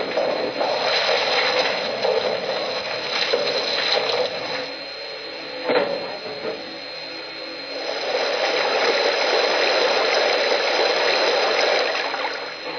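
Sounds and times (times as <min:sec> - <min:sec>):
water pouring into a locomotive water tank: 0:00.1 - 0:04.7, 0:07.9 - 0:12.6.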